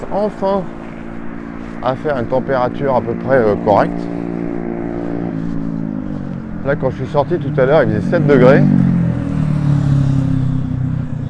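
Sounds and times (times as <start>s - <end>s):
small motorcycle passing by: 0.0s - 11.2s
speech: 0.1s - 0.8s, 1.8s - 4.1s, 6.6s - 8.8s.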